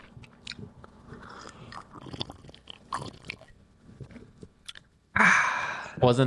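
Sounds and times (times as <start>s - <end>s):
small clicks and gulping mouth sounds: 0.0s - 4.9s
wet slurping sips of a blackcurrant drink: 0.5s - 4.2s
speech: 6.0s - 6.2s.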